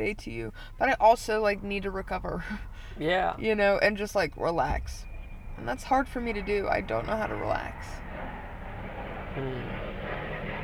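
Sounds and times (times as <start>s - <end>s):
speech: 0.0s - 8.3s, 9.4s - 9.9s
airplane flying overhead: 4.7s - 10.6s.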